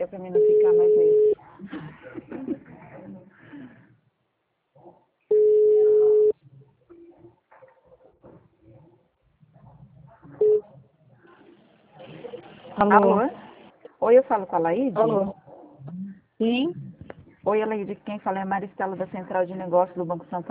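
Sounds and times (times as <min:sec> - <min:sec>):
speech: 0:00.0 - 0:00.6, 0:12.8 - 0:13.3, 0:14.1 - 0:15.4, 0:16.4 - 0:16.8, 0:17.5 - 0:20.5
ringback tone on an outgoing telephone call: 0:00.4 - 0:01.4, 0:05.3 - 0:06.3.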